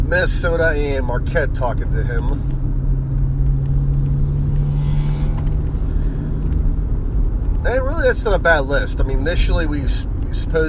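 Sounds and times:
speech: 0.1 - 2.6, 7.7 - 10.6
car passing outside with low engine rumble and road noise: 2.2 - 7.6.

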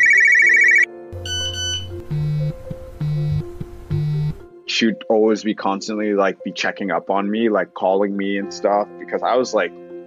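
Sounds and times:
flip phone ringtone beeping electronic melody: 0.0 - 4.4
speech: 4.8 - 9.8.

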